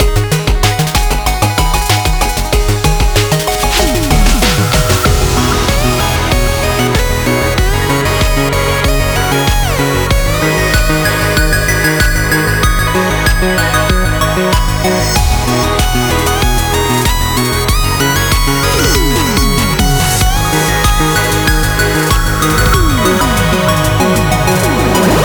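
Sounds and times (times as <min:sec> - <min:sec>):
chorus: 0:00.0 - 0:25.2.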